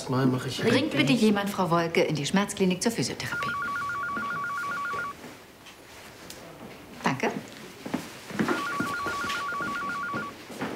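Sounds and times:
noisy room background: 0.0 - 10.7
speech: 0.1 - 3.8
phone ringing with a rapid warbling electronic tone: 3.2 - 5.2, 8.4 - 10.4.

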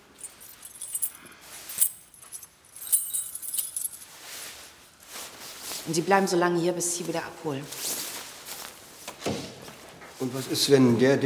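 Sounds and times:
keys jangling as they are picked up: 0.0 - 4.2
speech: 5.9 - 8.0, 10.2 - 11.2.

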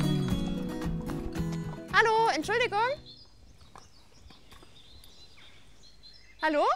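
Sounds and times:
horse hooves clopping along a trail: 0.0 - 5.1
speech: 2.4 - 3.2, 6.4 - 6.7.

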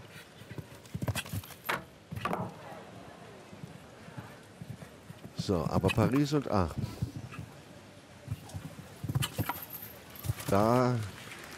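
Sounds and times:
horse hooves clip-clopping: 0.0 - 2.6, 3.6 - 7.6, 8.2 - 11.5
low murmur with faint voices: 2.4 - 11.5
speech: 5.5 - 7.0, 10.5 - 11.2.

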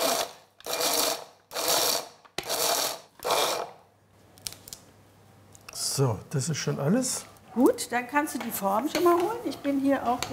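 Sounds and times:
nut grinder grinding walnut kernels with sugar: 0.0 - 3.8
speech: 6.0 - 10.3.

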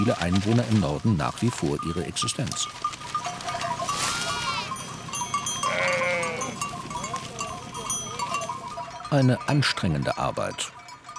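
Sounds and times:
speech: 0.0 - 3.1, 9.1 - 10.8
farm noise: 0.0 - 11.1
large flock of sheep bleating: 3.4 - 4.8, 5.5 - 7.6.

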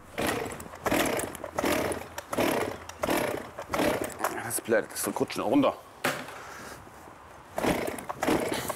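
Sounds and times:
chainsaw engine sputtering without catching: 0.0 - 4.5, 7.6 - 8.7
chainsaw being pull-started with cord yanks: 0.0 - 4.7, 7.6 - 8.7
speech: 4.7 - 5.9.

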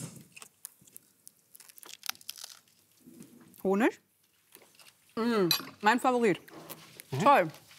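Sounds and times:
crunchy food with rocket being chewed during a taste test: 0.3 - 3.0
speech: 3.6 - 4.1, 5.2 - 6.5, 7.1 - 7.6.

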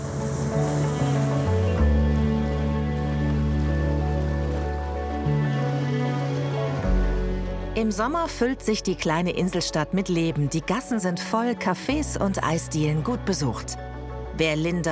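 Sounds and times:
boat engine droning while crossing a lake: 0.0 - 9.2
water rushing and splashing along a boat hull: 0.0 - 9.2
speech: 7.8 - 14.9.

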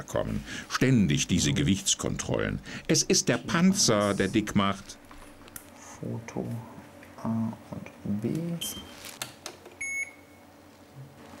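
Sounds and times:
speech: 0.0 - 5.0, 6.0 - 9.2
mobile phone beep: 8.6 - 9.0, 9.8 - 10.4.

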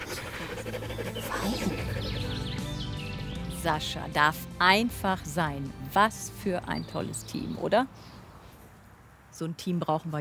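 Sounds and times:
dog panting: 0.0 - 2.5
speech: 3.6 - 8.2, 9.4 - 10.1.

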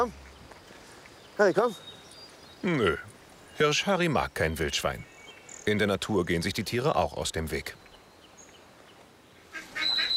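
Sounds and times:
speech: 1.4 - 1.9, 2.6 - 7.8
runner ducks quacking at a bird park: 9.5 - 10.1
short honking calls: 9.5 - 10.1.

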